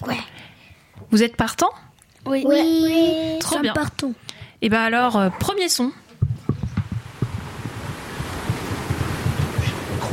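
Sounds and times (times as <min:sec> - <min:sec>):
speech: 0:01.1 - 0:06.0
ocean surf washing ashore: 0:06.7 - 0:10.1.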